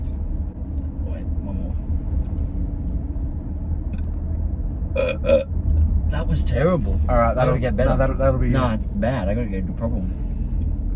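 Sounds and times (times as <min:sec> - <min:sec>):
low rumble: 0:00.0 - 0:10.9
person burping on request: 0:05.0 - 0:05.5
speech: 0:06.3 - 0:10.3.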